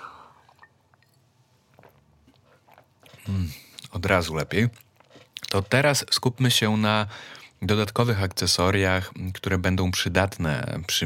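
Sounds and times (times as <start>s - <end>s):
person sipping a drink: 0.0s - 4.0s, 4.7s - 5.6s
soft wet mouth sounds: 0.3s - 4.0s, 4.7s - 5.6s
speech: 3.3s - 4.8s, 5.5s - 11.0s.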